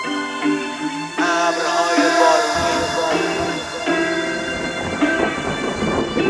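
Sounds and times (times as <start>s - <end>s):
sustained musical tones: 0.0s - 6.2s
heavy rain: 0.6s - 6.2s
loud rolling thunder: 1.2s - 6.2s.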